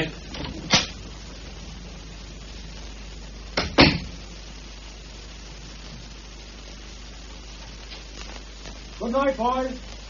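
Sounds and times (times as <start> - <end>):
front door thudding shut: 3.6 - 4.1
speech: 9.1 - 9.9.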